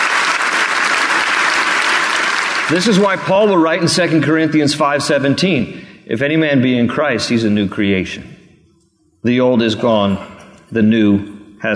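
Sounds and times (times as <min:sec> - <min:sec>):
large church audience clapping and applauding: 0:00.0 - 0:03.8
speech: 0:02.7 - 0:08.4, 0:09.2 - 0:11.7.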